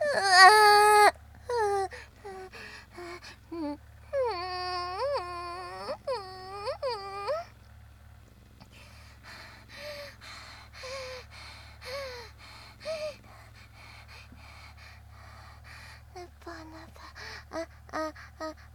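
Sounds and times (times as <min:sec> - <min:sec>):
baby crying: 0:00.0 - 0:07.5, 0:11.8 - 0:13.2, 0:15.6 - 0:18.7.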